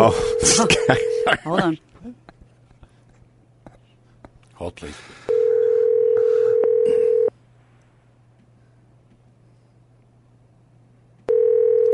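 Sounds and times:
speech: 0:00.0 - 0:02.2, 0:04.6 - 0:05.3
cell phone dialing tone: 0:00.1 - 0:01.3, 0:05.3 - 0:07.3, 0:11.3 - 0:11.9.

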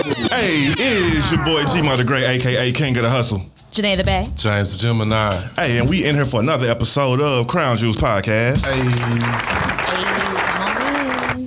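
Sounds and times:
speech: 0:00.3 - 0:10.0
applause from a small group: 0:08.6 - 0:11.4.

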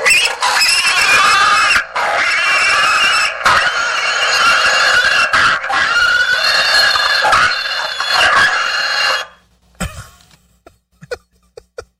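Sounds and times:
pig-squeal car horn blaring: 0:00.0 - 0:09.4.

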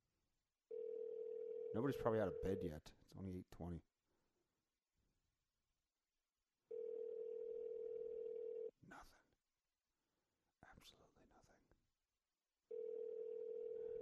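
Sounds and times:
ringback tone of an outgoing phone call: 0:00.7 - 0:02.6, 0:06.7 - 0:08.7, 0:12.7 - 0:14.0
speech: 0:01.7 - 0:03.9, 0:10.8 - 0:11.0.

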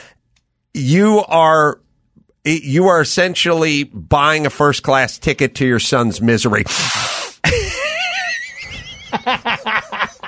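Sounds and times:
speech: 0:00.8 - 0:01.8, 0:02.4 - 0:07.2
loud sharp wheezing inhale with squealing wavering pitch: 0:06.7 - 0:07.4
short breathy bursts: 0:06.7 - 0:07.4
laughter: 0:07.5 - 0:10.2.

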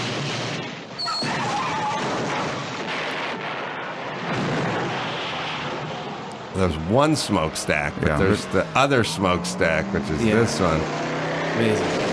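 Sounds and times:
crackling debris: 0:00.0 - 0:08.1
continuous roaring film explosions and rumbling blasts: 0:00.0 - 0:12.1
speech: 0:06.6 - 0:12.0.

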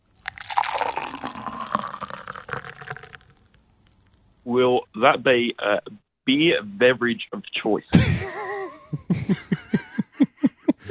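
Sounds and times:
coffee being poured: 0:00.0 - 0:04.1
speech: 0:04.5 - 0:09.7
laughter: 0:08.0 - 0:10.9.

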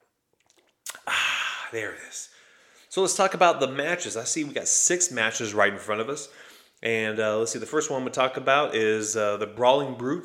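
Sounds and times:
person sipping beer: 0:00.0 - 0:01.9
soft wet mouth clicks: 0:00.3 - 0:01.7
short loud slurping of beer: 0:00.4 - 0:01.8
speech: 0:01.7 - 0:10.2.

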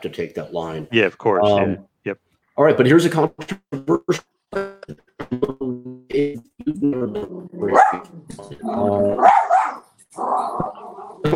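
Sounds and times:
speech: 0:00.0 - 0:04.6
small dog barking and yapping: 0:07.7 - 0:08.1, 0:08.7 - 0:11.2.

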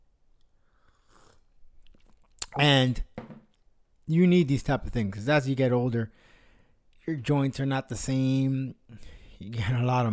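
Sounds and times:
coffee sipping slurp: 0:00.8 - 0:02.2
wet mouth clicks: 0:00.9 - 0:02.6
speech: 0:02.6 - 0:03.2, 0:04.1 - 0:06.3, 0:07.1 - 0:10.1.

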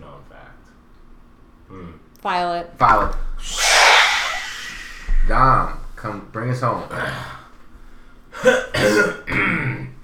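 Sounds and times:
speech: 0:01.7 - 0:03.7, 0:05.3 - 0:07.3, 0:08.4 - 0:09.9
person clearing throat in rough gravelly bursts: 0:08.4 - 0:10.0.

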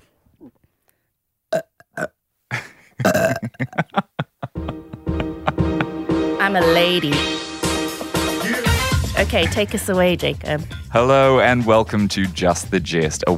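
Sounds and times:
speech: 0:00.4 - 0:00.6, 0:06.5 - 0:07.4, 0:09.2 - 0:13.3
loud burp after drinking energy drink: 0:01.5 - 0:02.2, 0:03.0 - 0:03.8
laughter: 0:02.5 - 0:06.1, 0:07.9 - 0:09.7
throaty gulps and clicks: 0:03.0 - 0:03.8.

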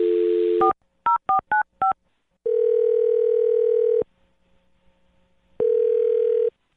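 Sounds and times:
telephone dial tone: 0:00.0 - 0:00.7, 0:02.5 - 0:04.0, 0:05.6 - 0:06.5.

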